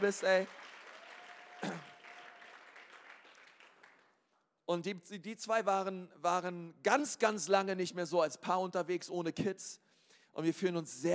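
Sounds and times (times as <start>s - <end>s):
speech: 0.0s - 0.7s, 1.6s - 1.9s, 4.7s - 11.1s
audience applauding: 0.0s - 4.2s.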